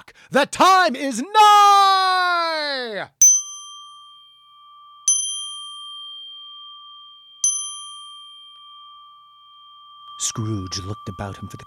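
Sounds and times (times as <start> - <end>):
speech: 0.3 - 2.1, 2.8 - 3.2, 10.2 - 11.6
clock bell striking the hour: 3.2 - 11.6.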